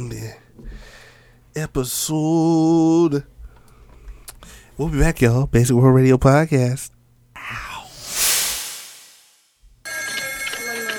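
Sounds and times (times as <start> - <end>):
speech: 1.6 - 3.3, 4.8 - 7.6
hiss of noise: 7.6 - 9.6
telephone bell ringing: 9.8 - 10.9.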